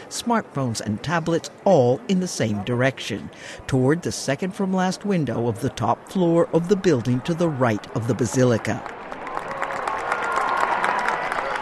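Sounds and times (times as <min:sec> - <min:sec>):
speech: 0:00.1 - 0:09.1
tens of thousands of people cheering and applauding in a square beside a basilica: 0:08.3 - 0:11.5.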